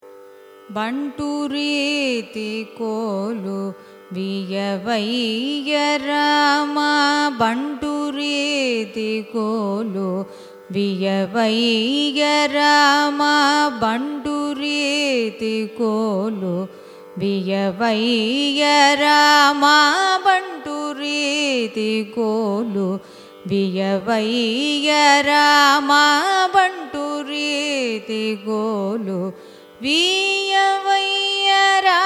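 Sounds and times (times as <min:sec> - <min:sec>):
Carnatic raga: 0:00.0 - 0:32.0.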